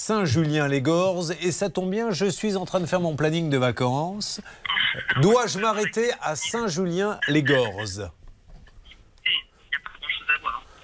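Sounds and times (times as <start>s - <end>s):
speech: 0.0s - 8.2s
faint tinny voice through a poor telephone line: 4.7s - 8.1s, 9.2s - 10.8s.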